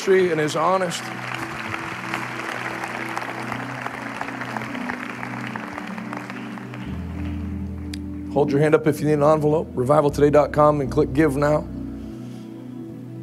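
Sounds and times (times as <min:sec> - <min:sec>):
speech: 0:00.0 - 0:01.4, 0:08.4 - 0:11.7
audience applause from a sizable crowd: 0:00.0 - 0:08.1
low sustained musical tones: 0:00.0 - 0:13.2.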